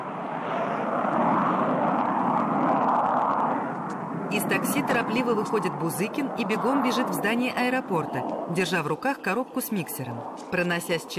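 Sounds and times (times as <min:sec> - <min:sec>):
airplane engine noise at an airport: 0:00.0 - 0:11.1
speech: 0:04.4 - 0:11.1.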